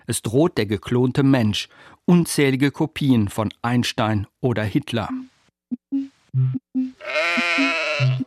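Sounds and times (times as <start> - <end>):
speech: 0.1 - 5.3, 5.9 - 8.2
sheep bleating: 7.0 - 8.2.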